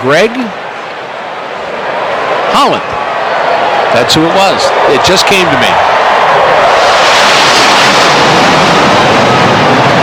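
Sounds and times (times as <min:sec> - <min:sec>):
speech: 0:00.0 - 0:00.6, 0:02.5 - 0:06.7
jet aircraft roaring overhead: 0:03.8 - 0:10.0.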